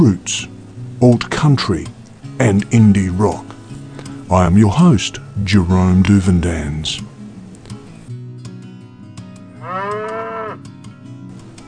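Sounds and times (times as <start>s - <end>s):
speech: 0.0s - 3.6s, 4.3s - 7.1s
cow mooing: 9.5s - 10.7s.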